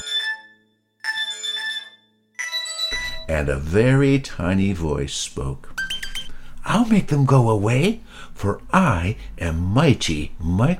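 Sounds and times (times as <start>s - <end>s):
small telephone ringing: 0.0s - 3.6s, 5.8s - 6.3s
speech: 3.3s - 5.7s, 6.7s - 10.7s.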